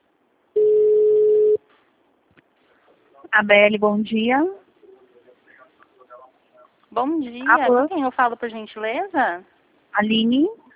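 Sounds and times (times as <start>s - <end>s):
telephone tone while call is being forwarded: 0.6s - 1.6s
speech: 3.4s - 4.6s, 6.9s - 10.6s.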